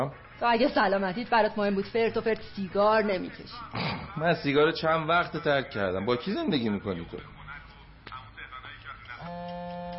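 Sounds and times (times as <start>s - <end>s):
speech: 0.0s - 7.4s
mobile phone ringing: 9.2s - 9.9s.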